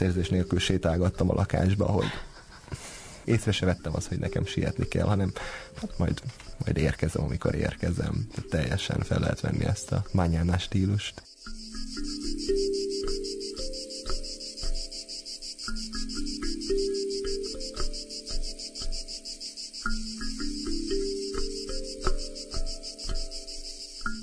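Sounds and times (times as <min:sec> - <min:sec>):
speech: 0:00.0 - 0:02.3, 0:03.2 - 0:12.1
crickets chirping: 0:00.0 - 0:24.2.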